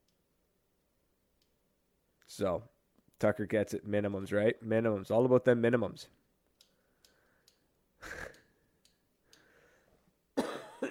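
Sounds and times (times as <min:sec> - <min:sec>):
speech: 0:02.4 - 0:06.2
soft breathing: 0:06.6 - 0:10.2
sharp coughs into a microphone: 0:10.4 - 0:10.8.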